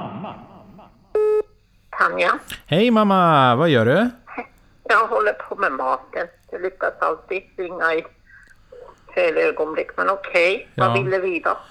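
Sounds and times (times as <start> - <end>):
loud steady electronic phone tone: 1.2 - 1.5
speech: 2.1 - 4.2, 4.9 - 8.2, 9.2 - 11.7.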